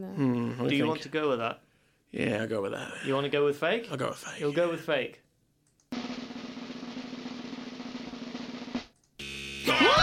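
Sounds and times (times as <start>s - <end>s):
speech: 0.0s - 5.2s
incorrect answer buzzer: 9.2s - 9.9s.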